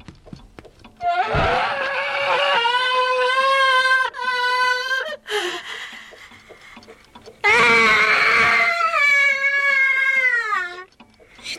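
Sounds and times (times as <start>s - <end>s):
piercing human-like screams from a screaming clock sound effect: 1.0s - 5.2s, 7.4s - 10.9s.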